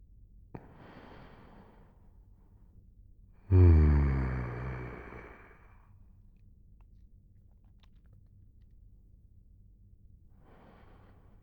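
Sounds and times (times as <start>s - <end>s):
slow deep breaths: 0.6s - 2.1s, 3.5s - 5.8s, 10.4s - 11.4s.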